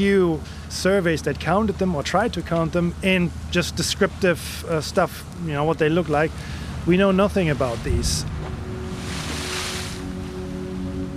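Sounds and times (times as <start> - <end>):
speech: 0.0 - 8.3
waves rushing at sea around a sailing ship: 6.6 - 11.1
steady low hum: 7.5 - 11.1.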